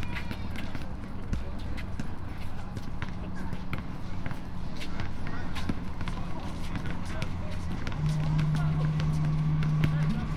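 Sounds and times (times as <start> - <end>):
footsteps of someone jogging past: 0.0 - 10.3
people talking in a park: 0.0 - 10.3
low continuous outdoor hum: 2.2 - 10.3.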